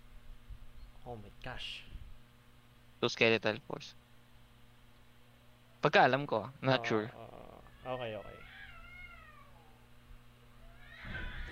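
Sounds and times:
steady low hum: 0:00.0 - 0:11.5
speech: 0:01.1 - 0:01.9, 0:03.0 - 0:04.0, 0:05.8 - 0:08.5
cats meowing: 0:07.6 - 0:09.8, 0:10.6 - 0:11.5.

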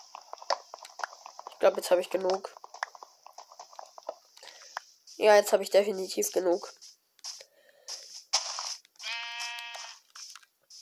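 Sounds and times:
speech: 0:01.6 - 0:02.6, 0:05.2 - 0:06.9
sheep bleating: 0:09.0 - 0:10.0.

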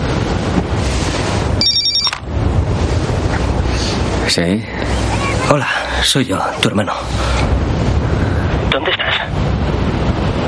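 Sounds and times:
steady rushing noise: 0:00.0 - 0:10.4
mobile phone ringtone in a beach house: 0:01.6 - 0:02.2
speech: 0:04.3 - 0:07.6.

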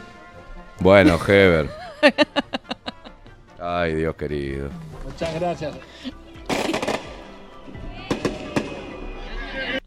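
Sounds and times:
speech: 0:00.8 - 0:02.5, 0:03.7 - 0:06.2
laughter: 0:00.9 - 0:03.4
gunshot-like bangs sound effect: 0:06.5 - 0:07.2.

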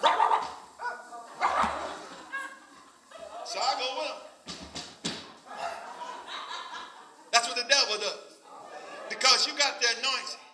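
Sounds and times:
dog barking: 0:00.0 - 0:02.6
laughter: 0:00.0 - 0:04.5, 0:05.2 - 0:10.4
speech: 0:03.5 - 0:04.6, 0:07.8 - 0:08.2, 0:09.2 - 0:10.4.

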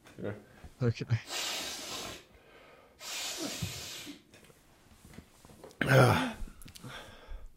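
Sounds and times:
speech: 0:00.2 - 0:01.4
forceful nasal sniffs: 0:01.2 - 0:02.4, 0:03.0 - 0:04.2
faint breathy noise: 0:01.3 - 0:04.2, 0:06.3 - 0:07.5.

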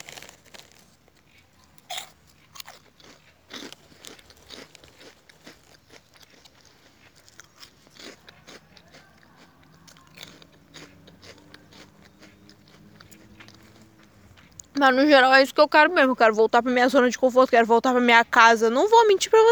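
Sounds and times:
someone biting into and chewing crisp food: 0:00.0 - 0:15.0
speech: 0:14.8 - 0:19.5.

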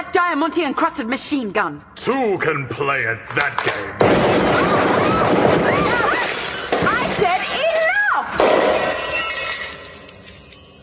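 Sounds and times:
speech: 0:00.1 - 0:06.3
brittle plastic storage container shattering: 0:03.6 - 0:09.9.

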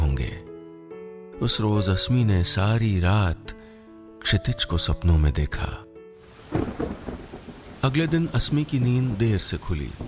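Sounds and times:
speech: 0:01.4 - 0:03.6, 0:04.2 - 0:05.9, 0:07.8 - 0:10.0
heavy rain pouring: 0:06.2 - 0:10.0
deep thunder rumbling: 0:06.3 - 0:10.0.

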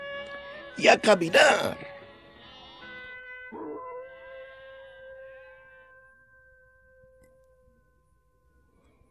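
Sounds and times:
speech: 0:00.8 - 0:01.9
wolves howling: 0:03.5 - 0:06.1.

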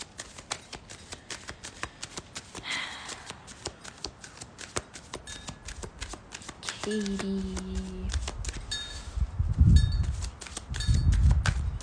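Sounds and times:
tarot cards being shuffled: 0:00.0 - 0:09.2, 0:10.0 - 0:11.8
speech: 0:06.9 - 0:08.2.

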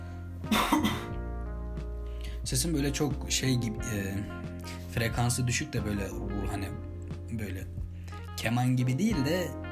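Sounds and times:
throat clearing: 0:00.5 - 0:01.2
speech: 0:02.5 - 0:07.8, 0:08.4 - 0:09.6.

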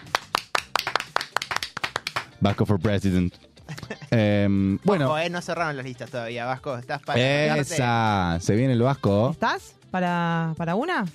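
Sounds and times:
small group hand clapping: 0:00.0 - 0:03.2
speech: 0:02.4 - 0:11.1
laughter: 0:03.6 - 0:04.4.

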